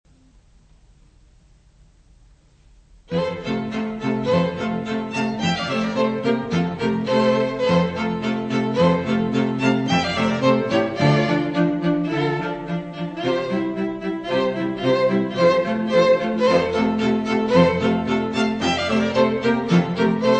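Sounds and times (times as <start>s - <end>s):
quartet playing: 3.1s - 20.3s.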